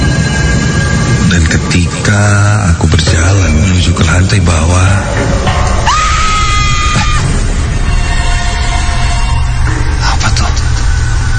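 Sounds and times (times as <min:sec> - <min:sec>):
dense noisy background: 0:00.0 - 0:11.3
speech: 0:02.1 - 0:05.4
loud screaming from downstairs on the ground floor: 0:05.8 - 0:07.3.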